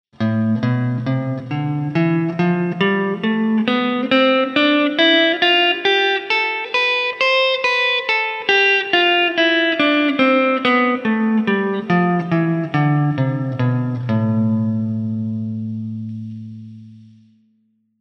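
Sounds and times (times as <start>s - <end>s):
finger-loosening exercise playing: 0.2s - 17.3s.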